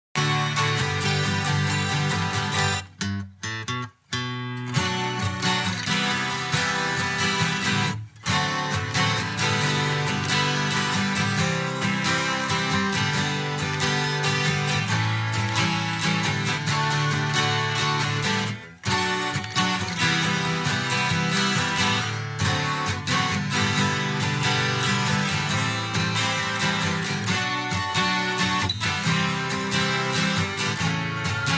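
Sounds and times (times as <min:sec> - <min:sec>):
short guitar karaoke track: 0:00.2 - 0:31.5.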